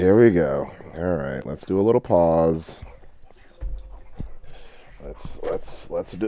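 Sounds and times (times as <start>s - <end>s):
speech: 0.0s - 2.9s, 5.0s - 6.2s
dogs whimpering and yipping while playing: 2.7s - 6.2s
dull thumps: 2.7s - 6.2s.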